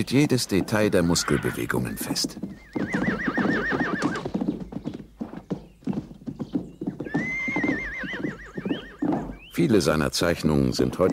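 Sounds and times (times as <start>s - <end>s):
speech: 0.0s - 3.7s, 9.6s - 11.1s
hooves clip-clopping: 0.0s - 11.1s
horse neighing: 0.6s - 4.3s, 7.0s - 9.5s.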